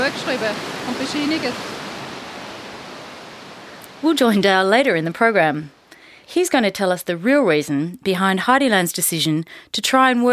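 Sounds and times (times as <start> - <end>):
speech: 0.0 - 1.8, 4.0 - 10.3
roar of rushing water in a mountain gorge: 0.0 - 6.2.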